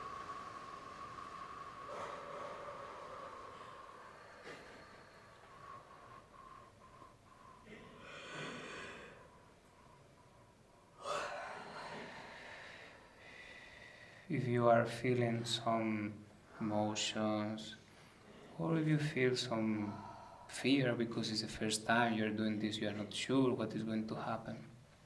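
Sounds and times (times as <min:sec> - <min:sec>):
deep breathing during guided meditation: 0:00.0 - 0:14.4, 0:17.7 - 0:18.6, 0:19.5 - 0:21.0
faint hum: 0:00.0 - 0:25.0
hiss: 0:00.0 - 0:25.0
speech: 0:14.3 - 0:17.8, 0:18.6 - 0:24.7.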